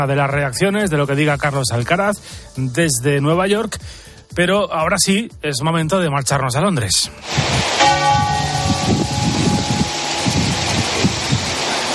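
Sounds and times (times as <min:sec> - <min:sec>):
speech: 0:00.0 - 0:08.0
church bell ringing at Windsor: 0:07.8 - 0:11.8.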